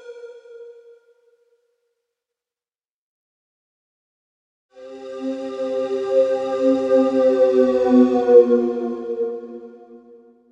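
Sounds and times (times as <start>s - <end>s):
synthesized flute bending down: 5.1s - 10.4s.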